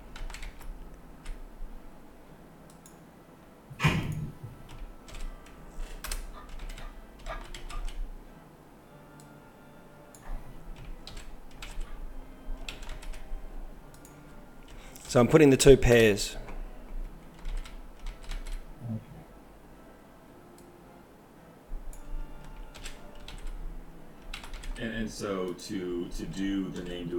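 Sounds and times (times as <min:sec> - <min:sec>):
faint noise: 0:00.0 - 0:27.1
typing on a computer keyboard to enter text into a chat: 0:00.1 - 0:01.4, 0:04.7 - 0:08.0, 0:10.8 - 0:11.9, 0:12.6 - 0:13.3, 0:17.3 - 0:18.6, 0:22.4 - 0:23.6, 0:24.2 - 0:24.8
speech: 0:15.1 - 0:16.4, 0:25.6 - 0:27.1.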